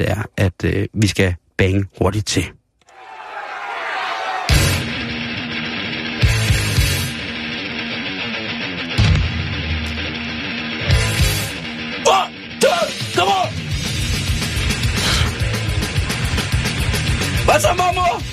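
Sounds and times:
speech: 0.0s - 2.6s, 17.6s - 18.3s
shouted thrash metal vocals: 2.9s - 4.7s
distorted guitars in a thrash metal song: 4.5s - 18.3s.

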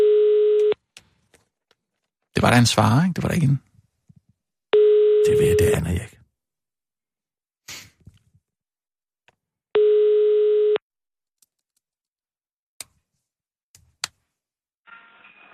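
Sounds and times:
steady electronic telephone line tone while on hold: 0.0s - 0.8s, 4.8s - 5.9s, 9.8s - 10.8s
speech: 2.4s - 3.7s.

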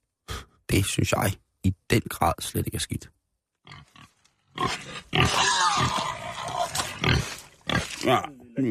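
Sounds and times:
speech: 0.7s - 3.8s, 4.6s - 6.0s, 8.0s - 8.6s
pig grunting and oinking: 3.6s - 8.4s.

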